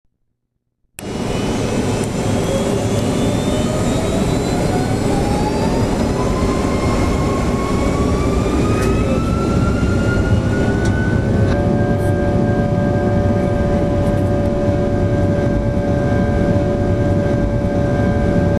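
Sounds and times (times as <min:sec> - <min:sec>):
Rolls-Royce RB211 jet engine noise inside a Boeing 757 cabin: 0:01.0 - 0:18.5.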